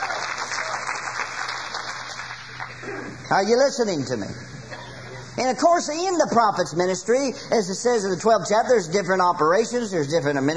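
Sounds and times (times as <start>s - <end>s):
audience clapping hands during a church service: 0.0s - 2.8s
speech: 3.3s - 4.5s, 5.4s - 10.5s.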